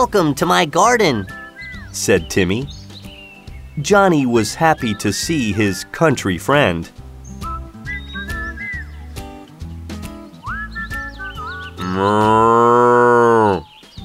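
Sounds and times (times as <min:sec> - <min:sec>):
speech: 0:00.0 - 0:01.4, 0:02.0 - 0:02.8, 0:03.8 - 0:07.0
cow mooing: 0:11.8 - 0:13.7.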